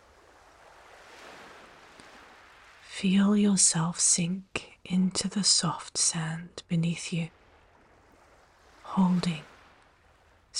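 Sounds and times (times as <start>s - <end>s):
soft ocean surf washing in: 0.0s - 4.1s, 7.3s - 10.5s
speech: 3.0s - 7.4s, 9.0s - 9.5s.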